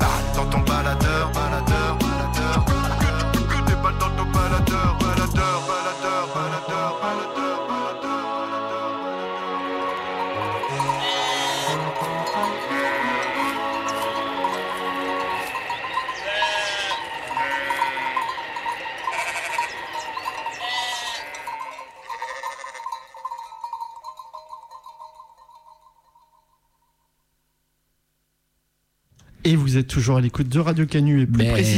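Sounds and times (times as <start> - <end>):
music: 0.0 - 21.2
sheep bleating: 10.4 - 23.2
speech: 29.8 - 31.7.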